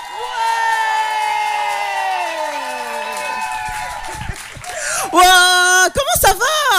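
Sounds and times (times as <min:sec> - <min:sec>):
scattered clapping: 0:00.0 - 0:05.3
crowd cheering with a sustained whoop: 0:00.0 - 0:05.7
speech: 0:05.1 - 0:06.7.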